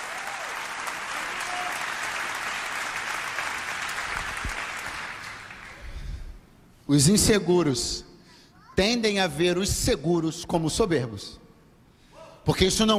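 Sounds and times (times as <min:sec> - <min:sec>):
church audience applauding during a morning service: 0:00.0 - 0:06.0
speech: 0:06.9 - 0:08.1, 0:08.8 - 0:11.4, 0:12.4 - 0:12.9.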